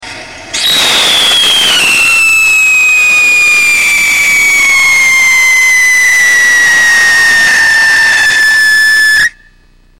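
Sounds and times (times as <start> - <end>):
potassium dichromate and sodium salicylate whistle rocket burning in test: 0.4 - 9.6.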